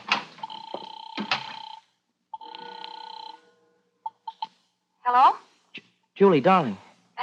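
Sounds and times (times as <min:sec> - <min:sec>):
telephone bell ringing in rattling bursts: 0:00.4 - 0:04.5
speech: 0:05.1 - 0:05.5, 0:06.2 - 0:06.8.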